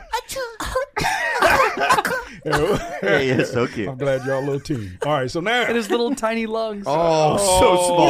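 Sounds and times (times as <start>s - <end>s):
person imitating a small child's tiny cough: 0.7s - 3.5s
laughter: 1.0s - 6.4s
speech: 2.4s - 8.0s.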